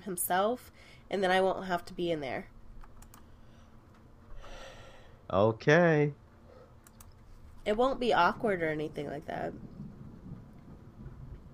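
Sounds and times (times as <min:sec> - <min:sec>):
speech: 0:00.0 - 0:02.6, 0:05.3 - 0:06.2, 0:07.6 - 0:09.8
rolling thunder: 0:07.7 - 0:11.5.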